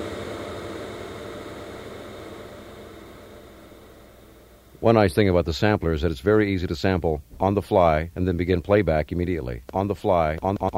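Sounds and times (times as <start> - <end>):
shimmering plate reverb tail: 0.0 - 5.2
speech: 4.8 - 10.7.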